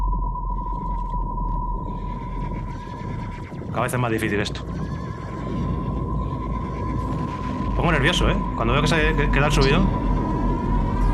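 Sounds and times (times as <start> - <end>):
dense continuous low rumble: 0.0 - 11.1
steady tone: 0.0 - 11.1
horses neighing: 1.9 - 11.1
speech: 3.8 - 5.0, 7.8 - 10.0.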